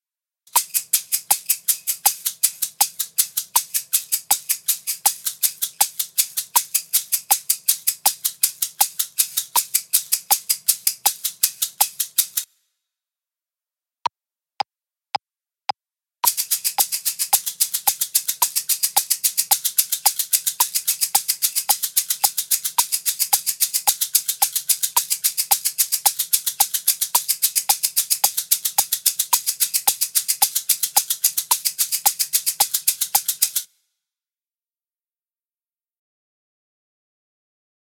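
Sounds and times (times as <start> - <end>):
shakers: 0.5 - 12.5, 16.2 - 33.7.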